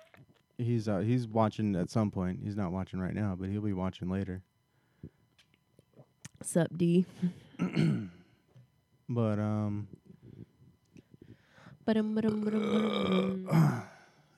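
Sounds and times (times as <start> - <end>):
speech: 0.6 - 5.2, 6.4 - 8.2, 9.1 - 10.0, 11.9 - 13.9
person burping: 7.6 - 8.3, 12.2 - 14.2.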